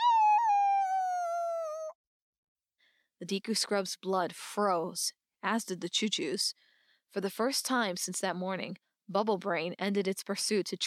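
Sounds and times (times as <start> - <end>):
creature howling: 0.0 - 1.9
speech: 3.2 - 10.8.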